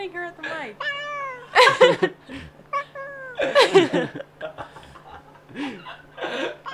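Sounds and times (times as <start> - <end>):
speech: 0.0 - 2.6, 3.4 - 4.3
faint steady hum: 0.0 - 6.7
cat meowing and caterwauling: 0.8 - 1.6, 2.7 - 3.6
laughter: 1.5 - 2.4, 3.4 - 6.7.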